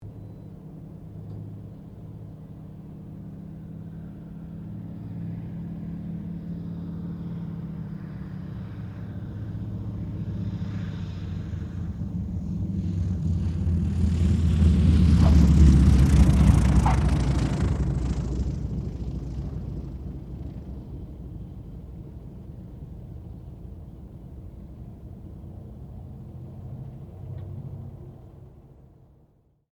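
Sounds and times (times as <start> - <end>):
AT-6D Harvard Mk III aircraft landing: 0.1 - 29.0.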